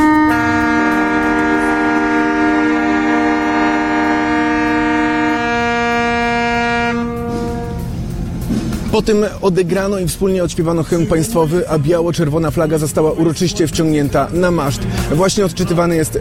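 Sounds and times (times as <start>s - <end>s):
alarm sirens: 0.0s - 7.8s
several warship typhon horns blaring in a dissonant chord: 0.0s - 8.9s
speech: 9.0s - 16.1s.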